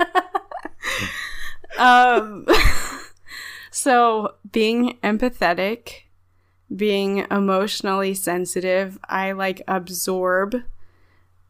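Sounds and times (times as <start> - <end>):
audible breathing with puffs and airy exhales: 0.8 - 1.6, 3.3 - 3.7, 6.2 - 6.7, 10.8 - 11.4
speech: 1.8 - 2.8, 3.7 - 6.0, 6.7 - 10.8.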